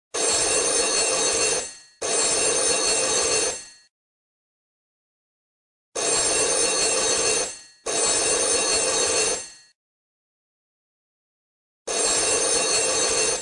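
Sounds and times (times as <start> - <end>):
French telephone ringing: 0.2 - 3.9, 6.0 - 9.8, 11.9 - 13.4.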